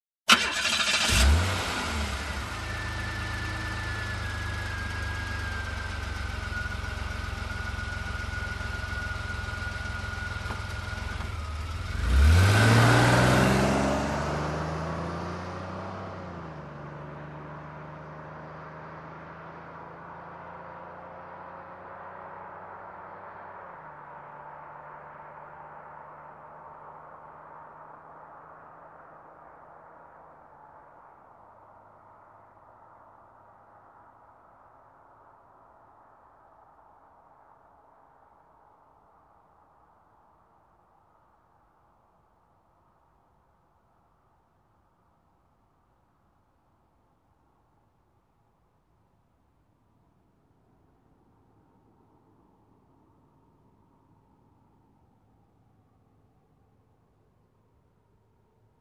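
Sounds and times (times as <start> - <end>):
car engine ignition: 0.3 - 28.5.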